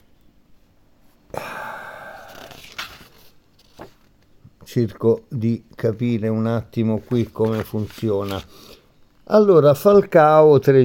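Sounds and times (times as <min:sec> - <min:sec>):
paper page being turned by a person reading aloud: 0:02.2 - 0:04.2, 0:06.9 - 0:08.6
speech: 0:04.7 - 0:10.8.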